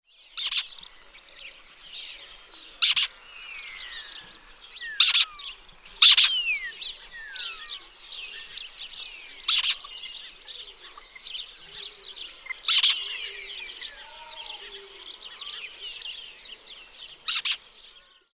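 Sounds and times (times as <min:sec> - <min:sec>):
Lesser kestrel Falco naumanii chattering calls and slurred whistles: 0:02.8 - 0:03.1, 0:04.9 - 0:07.8, 0:09.4 - 0:10.3, 0:11.8 - 0:15.8, 0:17.2 - 0:17.6.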